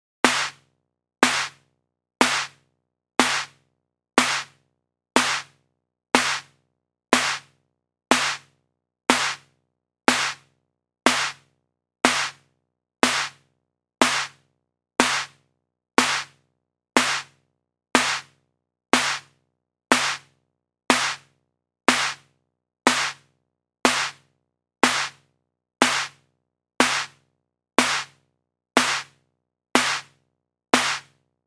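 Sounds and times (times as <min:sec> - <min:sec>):
122 BPM snare drum: 0:00.2 - 0:00.6, 0:01.2 - 0:01.6, 0:02.2 - 0:02.6, 0:03.2 - 0:03.6, 0:04.2 - 0:04.6, 0:05.2 - 0:05.6, 0:06.2 - 0:06.5, 0:07.2 - 0:07.5, 0:08.1 - 0:08.5, 0:09.1 - 0:09.5, 0:10.1 - 0:10.5, 0:11.1 - 0:11.4, 0:12.1 - 0:12.4, 0:13.0 - 0:13.4, 0:14.0 - 0:14.4, 0:15.0 - 0:15.4, 0:16.0 - 0:16.4, 0:17.0 - 0:17.4, 0:18.0 - 0:18.3, 0:19.0 - 0:19.3, 0:19.9 - 0:20.3, 0:20.9 - 0:21.3, 0:21.9 - 0:22.3, 0:22.9 - 0:23.2, 0:23.9 - 0:24.2, 0:24.8 - 0:25.2, 0:25.8 - 0:26.2, 0:26.8 - 0:27.2, 0:27.8 - 0:28.2, 0:28.8 - 0:29.2, 0:29.8 - 0:30.2, 0:30.8 - 0:31.2.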